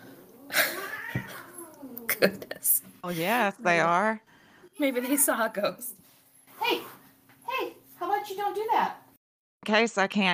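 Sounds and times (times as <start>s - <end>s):
fighting cats hissing and screeching: 0.0s - 2.2s
speech: 1.1s - 1.4s, 2.2s - 6.0s, 8.3s - 9.0s, 9.6s - 10.3s.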